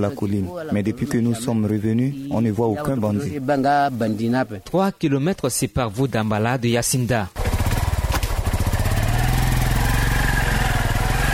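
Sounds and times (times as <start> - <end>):
speech: 0.0 - 7.4
motorcycle engine running: 7.4 - 11.3.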